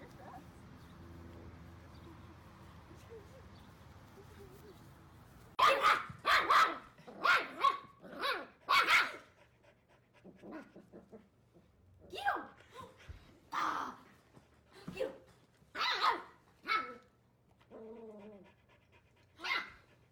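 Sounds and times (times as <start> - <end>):
golden doodle puppy barking in sharp high yaps: 5.6 - 9.2, 15.8 - 17.0, 19.4 - 20.1.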